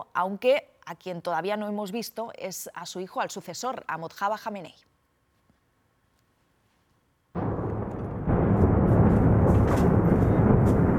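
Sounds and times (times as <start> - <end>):
speech: 0.0 - 4.9
heavy sustained rumbling roar after explosion: 7.4 - 10.9
loud explosion from missile attack on city: 7.4 - 10.9.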